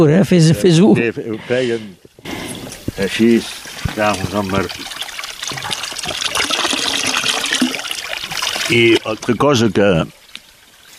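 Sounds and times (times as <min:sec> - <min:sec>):
speech: 0:00.0 - 0:02.4, 0:03.0 - 0:04.9, 0:08.7 - 0:10.2
water trickling from a drinking fountain: 0:02.0 - 0:10.9.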